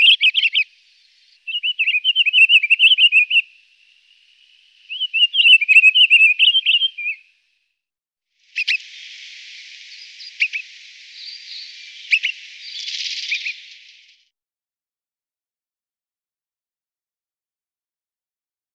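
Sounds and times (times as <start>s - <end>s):
Pine grosbeak song: 0.0s - 7.6s, 8.4s - 14.3s
steady hiss: 0.6s - 1.5s, 3.4s - 5.0s, 8.4s - 14.3s.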